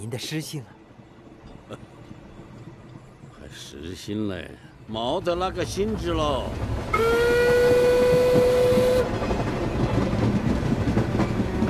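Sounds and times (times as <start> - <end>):
speech: 0.0 - 0.8, 1.7 - 1.9, 3.5 - 7.6
train wheels knocking on rails: 5.2 - 11.6
long steady train whistle: 6.9 - 9.1.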